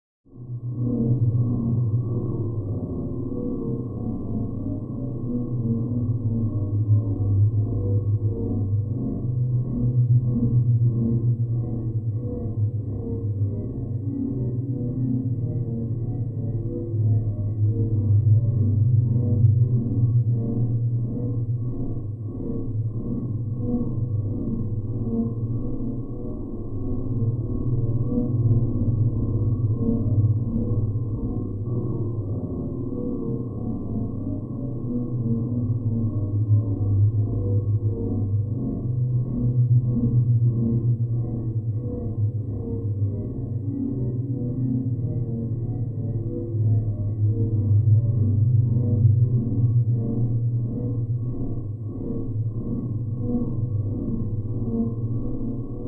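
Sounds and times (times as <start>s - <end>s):
terrifying pulsating low frequency rumble from radio signals: 0.3s - 55.8s.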